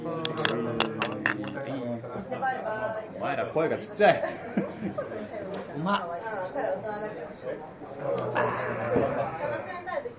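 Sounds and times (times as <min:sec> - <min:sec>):
glasses clinking in a toast: 0:00.2 - 0:01.6
speech: 0:02.5 - 0:05.0, 0:05.8 - 0:09.8.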